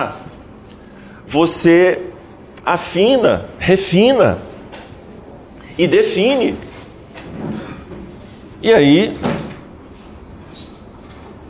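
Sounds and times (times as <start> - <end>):
speech: 0.0 - 0.3, 1.3 - 4.5, 5.8 - 6.7, 8.6 - 9.3
door pushed shut with a soft thud: 9.2 - 9.6.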